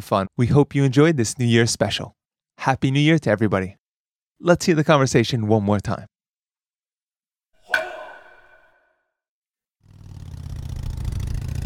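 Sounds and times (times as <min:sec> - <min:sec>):
speech: 0:00.0 - 0:03.8, 0:04.4 - 0:06.1
sharp metallic ping: 0:07.6 - 0:08.9
motorcycle engine revving during police chase: 0:09.8 - 0:11.6.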